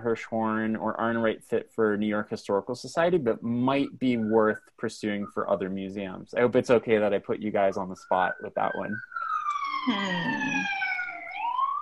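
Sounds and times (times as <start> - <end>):
speech: 0.0 - 9.1, 9.8 - 10.8
New York City emergency vehicle siren wailing: 7.7 - 11.7.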